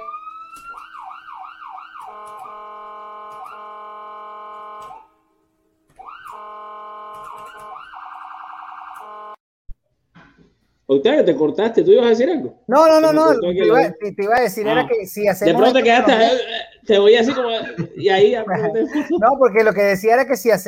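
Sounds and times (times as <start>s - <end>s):
ambulance siren wailing and warbling: 0.0s - 5.2s, 6.0s - 9.4s
speech: 10.9s - 20.6s
laughter: 14.6s - 19.5s.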